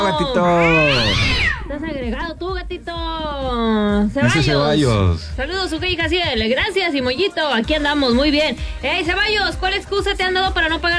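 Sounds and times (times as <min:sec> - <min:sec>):
speech: 0:00.1 - 0:10.9
kitten yowling and meowing while fighting: 0:00.5 - 0:01.7.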